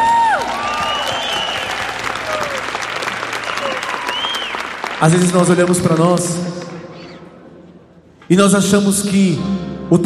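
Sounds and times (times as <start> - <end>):
audience applause: 0.0 - 7.0
speech: 5.0 - 6.5, 8.3 - 10.0.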